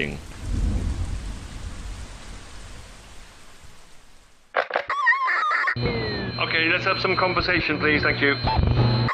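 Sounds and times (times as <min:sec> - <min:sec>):
speech: 0:00.0 - 0:00.4, 0:05.8 - 0:09.0
deep rumble of thunder: 0:00.0 - 0:04.4
heavy monsoon rain: 0:00.0 - 0:04.5.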